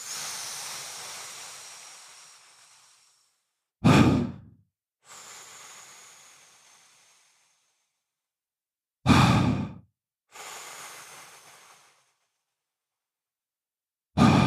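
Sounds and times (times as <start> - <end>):
short abrupt exhale in a straw breathing exercise: 0.0 - 8.0, 9.1 - 12.2, 14.2 - 14.4
long hissing inhale through a straw in a breathing exercise: 0.0 - 8.1, 9.1 - 12.6, 14.2 - 14.4.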